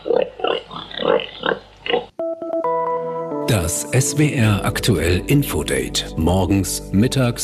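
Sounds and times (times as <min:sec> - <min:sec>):
pig in Berlin grunting: 0:00.0 - 0:02.1
bright electronic musical jingle: 0:02.2 - 0:06.2
speech: 0:03.5 - 0:07.4.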